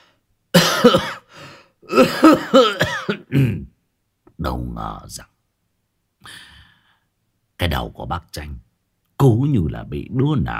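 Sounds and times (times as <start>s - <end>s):
old man coughing hard: 0.5s - 3.8s
speech: 0.8s - 1.1s, 2.0s - 3.6s, 4.4s - 5.3s, 7.6s - 10.5s.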